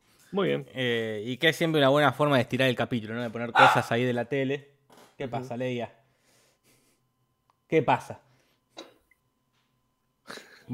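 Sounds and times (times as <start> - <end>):
speech: 0.3 - 6.0, 7.7 - 8.9, 10.3 - 10.7
dog barking: 3.6 - 4.0.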